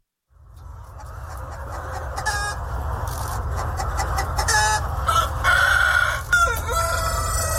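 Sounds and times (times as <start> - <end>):
Vietnamese dragon chickens clucking and calling: 0.4 - 7.5
Vietnamese dragon chicken rooster crowing: 4.7 - 7.5.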